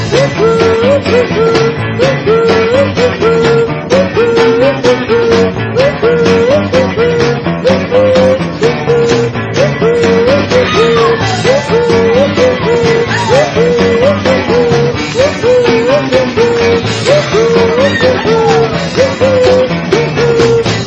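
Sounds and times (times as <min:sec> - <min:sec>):
person cheering: 0:00.1 - 0:20.8.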